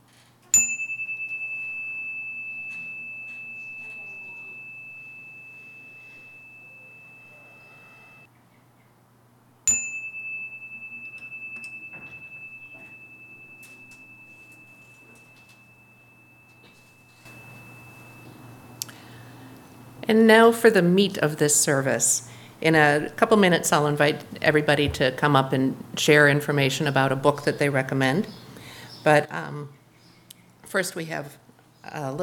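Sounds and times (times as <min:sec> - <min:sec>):
meditation chime ringing: 0:00.6 - 0:08.3, 0:09.7 - 0:21.3
speech: 0:20.1 - 0:28.4, 0:29.0 - 0:29.8, 0:30.7 - 0:32.2.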